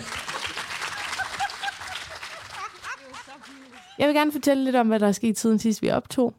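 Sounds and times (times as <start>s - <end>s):
audience applauding: 0.0s - 4.4s
voices and laughs in the audience: 1.2s - 4.1s
speech: 4.0s - 6.3s.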